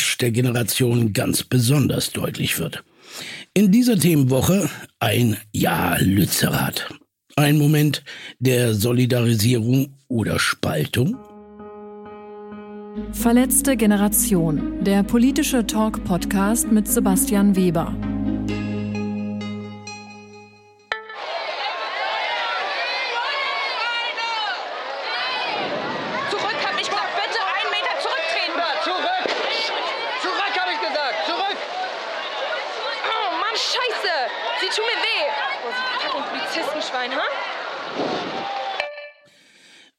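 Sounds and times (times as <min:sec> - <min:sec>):
speech: 0:00.2 - 0:11.3, 0:13.0 - 0:18.6
musical tone: 0:11.1 - 0:21.2
crowd shouting and chattering during police eviction of sit-in: 0:20.9 - 0:39.1.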